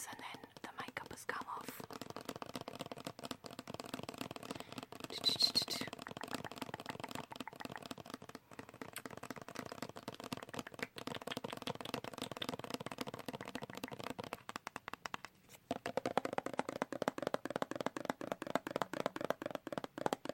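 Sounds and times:
fast tapping: 0.0s - 20.3s.

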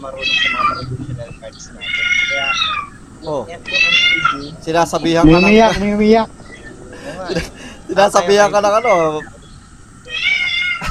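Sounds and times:
speech: 0.0s - 6.4s, 7.2s - 9.4s
cat meowing: 0.1s - 3.0s, 3.6s - 4.6s, 10.0s - 10.8s
laughter: 6.9s - 8.6s.

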